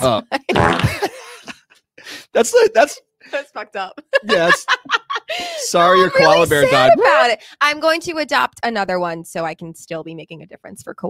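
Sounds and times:
speech: 0:00.0 - 0:01.0, 0:02.4 - 0:11.0
laughter: 0:00.4 - 0:01.7, 0:04.0 - 0:07.3
sputtering fart sound effect: 0:00.5 - 0:01.0.

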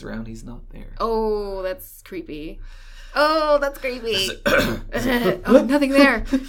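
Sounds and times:
speech: 0:00.0 - 0:06.4
person clearing throat with gravelly rasp and grunt: 0:04.1 - 0:05.4.

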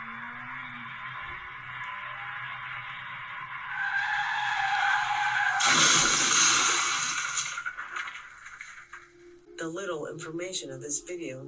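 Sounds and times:
car driving at full speed: 0:00.0 - 0:08.9
car tires skidding: 0:00.0 - 0:09.0
speech: 0:10.1 - 0:11.4.

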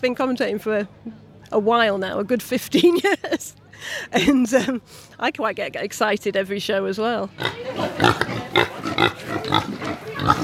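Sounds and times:
speech: 0:00.0 - 0:10.4
British saddleback pigs grunting in a show tent: 0:07.4 - 0:10.4.

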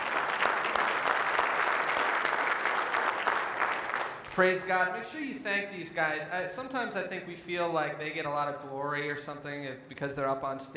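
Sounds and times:
audience at a morning church service applauding: 0:00.0 - 0:04.5
speech: 0:04.4 - 0:10.7.

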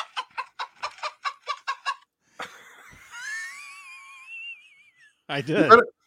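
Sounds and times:
chickens clucking: 0:00.0 - 0:02.1
laughter: 0:00.0 - 0:05.8
speech: 0:05.3 - 0:05.9.

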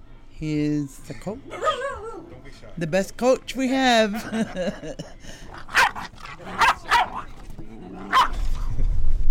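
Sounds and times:
speech: 0:00.4 - 0:01.6, 0:02.5 - 0:05.8
dog barking: 0:01.5 - 0:02.2, 0:05.5 - 0:07.3, 0:08.0 - 0:08.5
laughter: 0:04.1 - 0:07.0
dog growling: 0:05.4 - 0:08.6.

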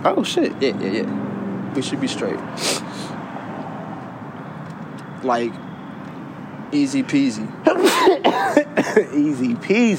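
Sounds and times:
speech: 0:00.0 - 0:03.0, 0:05.2 - 0:05.7, 0:06.7 - 0:09.9
person sneezing: 0:02.6 - 0:03.1, 0:07.7 - 0:09.1.

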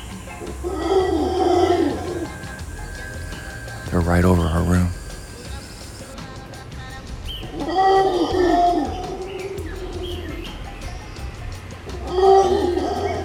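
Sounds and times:
howler monkeys calling in deep rolling roars: 0:00.0 - 0:03.4, 0:07.5 - 0:10.6, 0:12.0 - 0:13.2
speech: 0:04.1 - 0:05.0.

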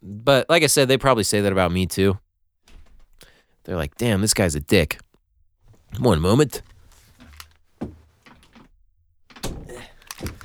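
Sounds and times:
speech: 0:00.2 - 0:02.2, 0:03.7 - 0:05.0, 0:05.9 - 0:06.7
door being pushed shut: 0:02.7 - 0:03.2, 0:05.7 - 0:10.4.

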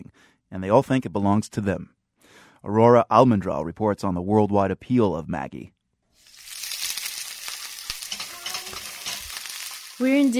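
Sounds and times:
speech: 0:00.5 - 0:02.0, 0:02.6 - 0:05.8, 0:10.0 - 0:10.3
onions sizzling in a hot pan: 0:06.2 - 0:10.3.

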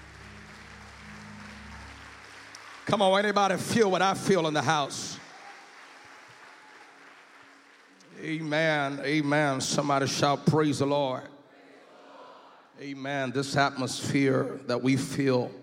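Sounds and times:
crowd clapping in a large room: 0:00.0 - 0:09.6
speech: 0:02.9 - 0:05.2, 0:08.3 - 0:11.3, 0:12.8 - 0:15.6.

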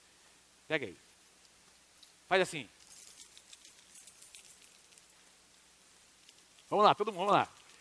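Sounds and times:
speech: 0:00.7 - 0:01.1, 0:02.3 - 0:02.8, 0:06.7 - 0:07.6
bunches of keys jangling shaken by an audience: 0:01.0 - 0:05.3, 0:06.0 - 0:07.7.

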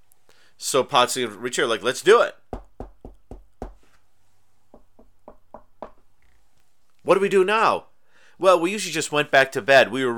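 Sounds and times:
speech: 0:00.6 - 0:02.4, 0:07.1 - 0:10.1
loud sharp knocks on a wall: 0:02.5 - 0:03.8, 0:04.7 - 0:06.0.

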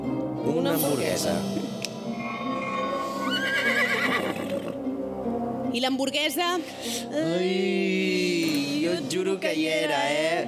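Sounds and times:
speech: 0:00.4 - 0:01.8, 0:05.8 - 0:10.4
horse neighing with a long quavering whinny: 0:02.0 - 0:04.9.

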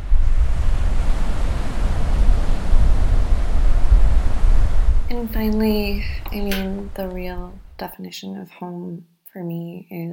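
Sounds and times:
ocean waves breaking on a shore: 0:00.0 - 0:07.8
speech: 0:05.4 - 0:10.1.

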